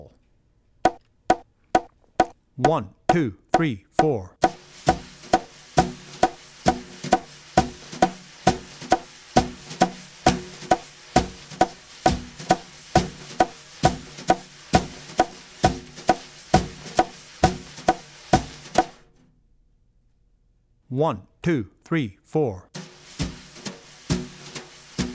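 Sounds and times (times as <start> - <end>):
jazz drum brushes: 0.9 - 19.0, 23.1 - 25.1.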